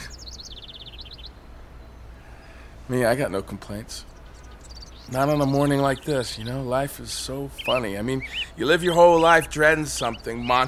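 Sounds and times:
hum: 0:00.0 - 0:10.6
low outdoor rumble: 0:00.0 - 0:10.6
young birds chirping: 0:00.0 - 0:10.6
speech: 0:02.9 - 0:04.1, 0:05.1 - 0:10.6.

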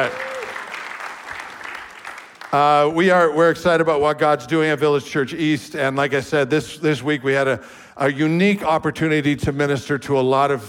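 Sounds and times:
speech: 0:00.0 - 0:00.3, 0:02.5 - 0:10.6
church audience applauding to welcome visitors: 0:00.0 - 0:02.8.

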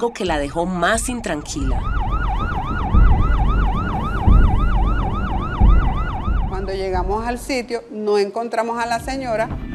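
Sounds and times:
speech: 0:00.0 - 0:02.0, 0:06.7 - 0:09.6
ambulance siren yelping: 0:00.0 - 0:07.5.

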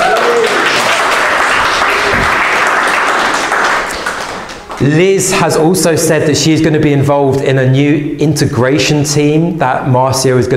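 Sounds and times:
roomful of people in a church clapping: 0:00.0 - 0:05.2
speech: 0:04.8 - 0:10.5.

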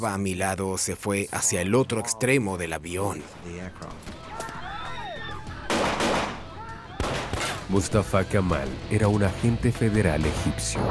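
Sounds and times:
speech: 0:00.0 - 0:04.3, 0:07.7 - 0:10.8
people shouting: 0:04.0 - 0:07.7
gunfire: 0:05.7 - 0:07.7.

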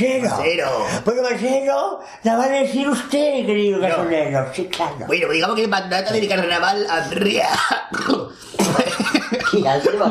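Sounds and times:
speech: 0:00.0 - 0:10.0
person coughing: 0:07.4 - 0:09.7
laughter: 0:08.5 - 0:10.0.

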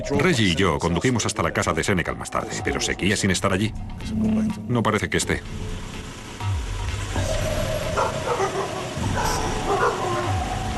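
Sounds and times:
speech: 0:00.0 - 0:05.8
dogs barking: 0:07.2 - 0:10.7.

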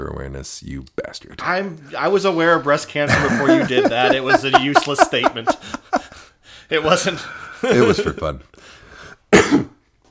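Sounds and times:
speech: 0:00.0 - 0:05.7, 0:06.7 - 0:08.5
laughter: 0:03.0 - 0:08.4
single harsh cough: 0:09.3 - 0:09.8.

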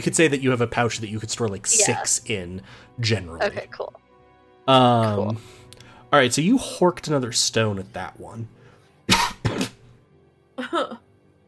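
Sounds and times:
speech: 0:00.0 - 0:04.0, 0:04.7 - 0:09.7, 0:10.6 - 0:11.0
person clearing throat: 0:09.1 - 0:09.8
person coughing: 0:09.1 - 0:09.8.

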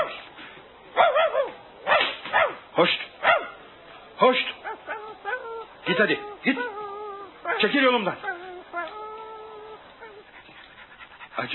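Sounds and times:
dog barking and whimpering: 0:01.0 - 0:02.6, 0:03.2 - 0:03.6, 0:04.5 - 0:10.4
speech: 0:02.8 - 0:03.1, 0:05.9 - 0:06.8, 0:07.6 - 0:08.3
man calling out: 0:04.2 - 0:08.7.

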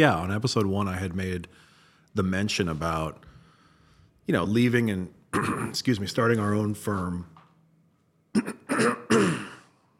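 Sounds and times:
speech: 0:00.0 - 0:03.3, 0:04.3 - 0:07.3, 0:08.4 - 0:09.5
person clearing throat: 0:05.4 - 0:05.8, 0:08.4 - 0:09.8
person coughing: 0:05.4 - 0:05.8, 0:08.4 - 0:09.8.

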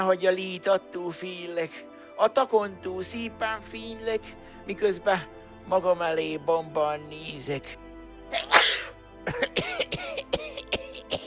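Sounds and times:
speech: 0:00.0 - 0:10.2
person with a cold coughing harshly: 0:08.4 - 0:11.2.

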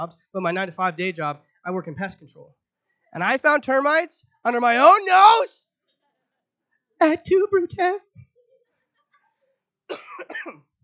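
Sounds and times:
speech: 0:00.0 - 0:05.6, 0:07.0 - 0:08.3, 0:09.9 - 0:10.7
person clearing throat: 0:09.9 - 0:10.7
person coughing: 0:09.9 - 0:10.7.

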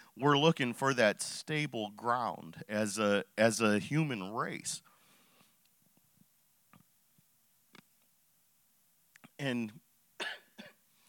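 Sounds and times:
speech: 0:00.2 - 0:04.9, 0:09.4 - 0:10.4
person breathing: 0:04.8 - 0:05.6
person coughing from chest congestion: 0:10.2 - 0:10.8.

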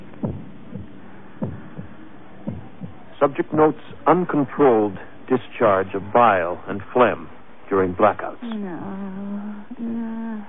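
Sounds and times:
arrhythmic heartbeat in uneven double beats: 0:00.0 - 0:03.2
faint steady hum: 0:00.0 - 0:10.4
speech: 0:03.2 - 0:10.4.

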